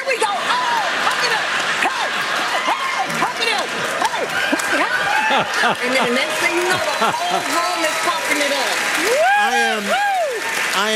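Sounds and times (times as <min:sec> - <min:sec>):
rhythmic hand claps from a side-to-side step clap: 0:00.0 - 0:10.9
people laughing: 0:00.1 - 0:08.4
speech: 0:05.4 - 0:08.7, 0:09.4 - 0:10.1, 0:10.8 - 0:10.9.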